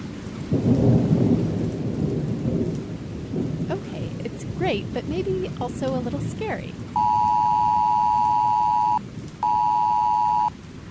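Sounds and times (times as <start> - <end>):
deep rolling thunder rumbling: 0.0 - 10.8
steady rain hissing: 0.0 - 10.8
speech: 4.7 - 6.8
phone emergency weather alert tone: 7.0 - 10.5.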